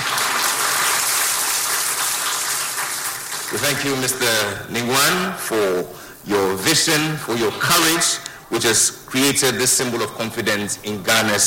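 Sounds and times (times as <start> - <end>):
large crowd applauding at an event in Ghana: 0.0 - 4.2
speech: 3.5 - 11.4.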